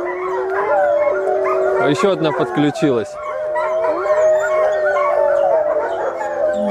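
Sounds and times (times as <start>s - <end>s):
several dogs howling together at an animal shelter: 0.0s - 6.6s
speech: 1.8s - 3.3s.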